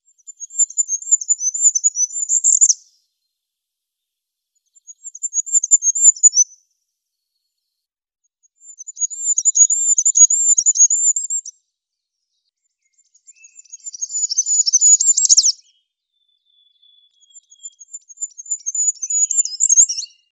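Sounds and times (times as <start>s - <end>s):
goldcrest singing a varied song: 0.0s - 3.0s, 4.6s - 6.6s, 8.5s - 20.3s.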